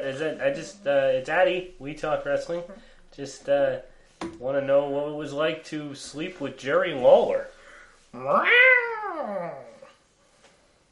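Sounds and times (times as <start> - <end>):
speech: 0.0 - 7.5, 8.1 - 8.7
long drawn-out cat meow: 8.2 - 9.9.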